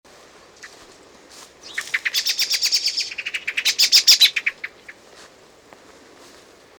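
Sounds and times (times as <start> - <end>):
common blackbird Turdus merula giving chattering chirps: 1.6 - 5.0.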